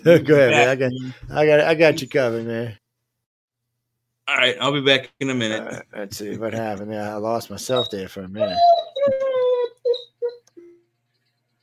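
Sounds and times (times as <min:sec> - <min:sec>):
speech: 0:00.0 - 0:02.8, 0:04.3 - 0:09.2
puppy whimpering: 0:07.7 - 0:10.5.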